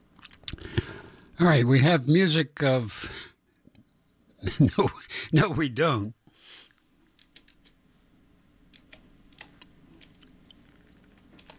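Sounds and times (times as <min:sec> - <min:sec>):
speech: 0:01.4 - 0:03.1, 0:04.4 - 0:06.2
quiet typing on a computer keyboard: 0:07.2 - 0:07.7, 0:11.4 - 0:11.5.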